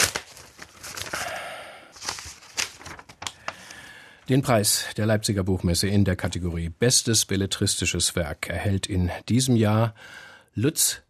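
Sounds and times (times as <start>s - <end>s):
paper envelope being torn open: 0.0s - 1.4s, 2.0s - 3.6s
speech: 4.3s - 11.0s.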